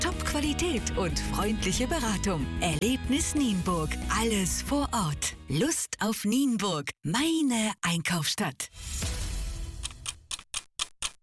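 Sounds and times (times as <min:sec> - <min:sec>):
speech: 0:00.4 - 0:09.2
clock ticking: 0:09.8 - 0:11.2.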